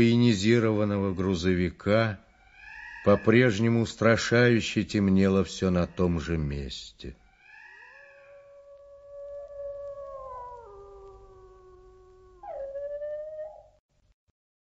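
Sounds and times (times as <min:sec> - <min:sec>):
speech: 0:00.0 - 0:02.2, 0:03.0 - 0:07.2
wolves howling: 0:02.4 - 0:03.8, 0:07.3 - 0:13.8.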